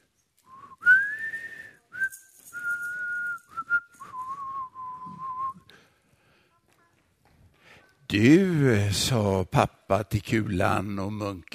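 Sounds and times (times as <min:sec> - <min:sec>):
person whistling a short lively tune: 0:00.4 - 0:05.7
speech: 0:08.1 - 0:11.5.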